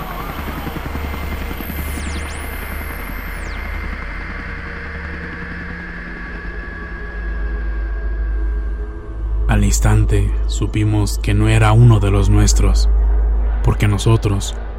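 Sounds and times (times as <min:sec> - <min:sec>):
helicopter rotor drone and engine whine: 0:00.0 - 0:14.7
speech: 0:09.6 - 0:13.0, 0:13.7 - 0:14.6.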